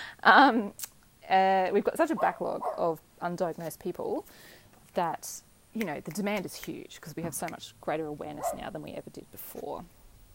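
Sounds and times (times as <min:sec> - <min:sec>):
speech: 0:00.2 - 0:10.0
dog barking in a stable: 0:02.2 - 0:02.9, 0:08.4 - 0:08.7.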